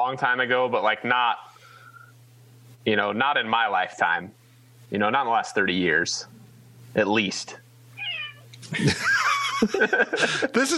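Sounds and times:
speech: 0.0s - 1.5s, 2.8s - 7.6s, 8.7s - 10.7s
low steady hum: 0.0s - 10.7s
male cat meowing: 8.0s - 8.5s
laughter: 8.6s - 10.7s.

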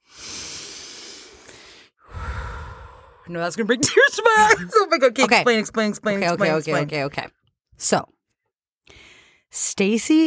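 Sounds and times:
deep breath in through the nose and out through the mouth: 0.0s - 3.3s, 8.9s - 9.5s
speech: 3.3s - 8.2s, 8.9s - 10.2s
laughter: 3.8s - 7.1s.

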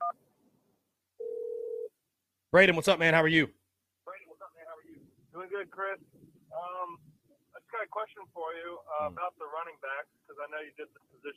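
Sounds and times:
dual-tone telephone beep on a phone-in line: 1.2s - 1.9s
speech: 2.5s - 3.6s, 5.6s - 7.0s, 7.7s - 11.3s.

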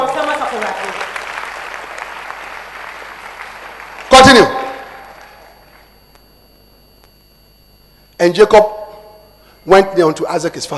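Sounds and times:
audience clapping hands for the Lord: 0.0s - 6.0s
speech: 8.2s - 8.8s, 9.6s - 10.7s.

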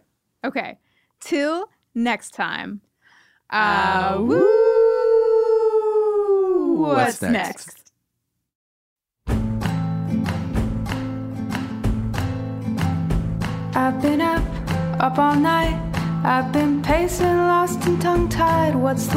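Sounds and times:
speech: 0.4s - 2.9s, 3.5s - 4.7s, 6.8s - 7.8s, 13.8s - 19.1s
people howling together like wolves: 3.7s - 7.0s
music: 9.2s - 19.1s.

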